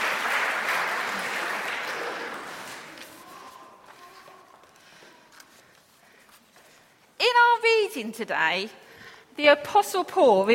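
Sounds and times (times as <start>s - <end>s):
audience applauding a team: 0.0s - 3.2s
speech: 7.9s - 8.8s, 9.4s - 10.5s.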